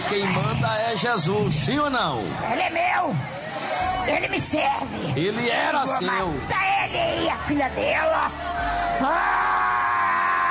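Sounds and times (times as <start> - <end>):
speech: 0.1 - 9.5
person screaming during a religious prayer session: 9.0 - 10.4.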